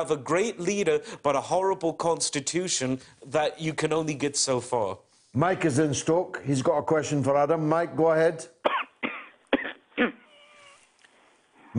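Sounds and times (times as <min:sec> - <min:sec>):
speech: 0:00.0 - 0:08.8
person coughing over a radio phone-in telephone line: 0:08.7 - 0:10.3.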